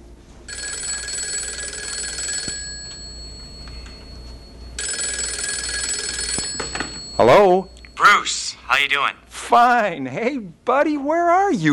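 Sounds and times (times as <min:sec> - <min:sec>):
telephone ringing: 0:00.5 - 0:09.1
speech: 0:07.3 - 0:11.7.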